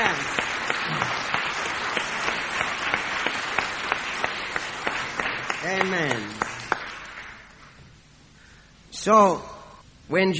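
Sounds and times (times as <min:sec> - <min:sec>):
room full of people applauding: 0:00.0 - 0:07.8
speech: 0:09.0 - 0:09.5, 0:10.1 - 0:10.3.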